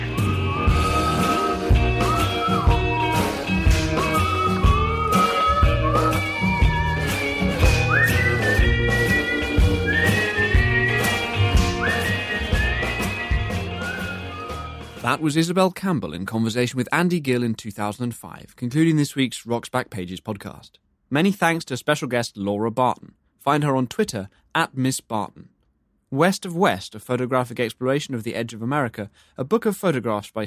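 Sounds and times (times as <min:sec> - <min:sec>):
full band song with drums and bouncing bass line: 0:00.0 - 0:15.2
whistled melody with sliding notes: 0:00.0 - 0:15.2
speech: 0:15.1 - 0:25.5, 0:26.1 - 0:30.4.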